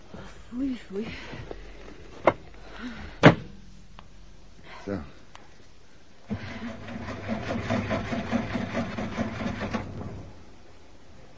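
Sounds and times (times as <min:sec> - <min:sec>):
speech: 0:00.5 - 0:01.6, 0:04.8 - 0:05.2
car engine cranking but failing to start: 0:06.3 - 0:10.4.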